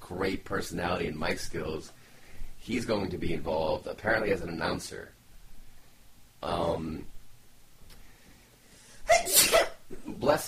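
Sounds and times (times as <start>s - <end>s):
speech: 0.1s - 2.0s, 2.6s - 5.2s, 6.4s - 7.1s, 10.2s - 10.4s
person sneezing: 9.0s - 10.2s.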